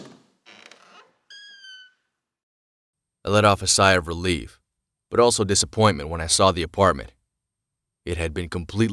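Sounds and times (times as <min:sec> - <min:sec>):
apartment door creaking slowly open: 0:00.0 - 0:02.1
speech: 0:03.3 - 0:07.2, 0:08.0 - 0:08.9.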